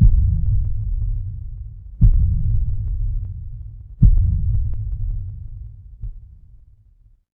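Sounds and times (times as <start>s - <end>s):
horror heartbeat: 0.0s - 6.8s.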